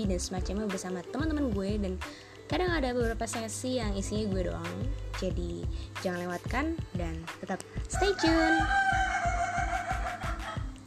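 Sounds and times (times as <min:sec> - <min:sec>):
speech: 0:00.0 - 0:09.0
chicken cackling and crowing: 0:08.0 - 0:10.8.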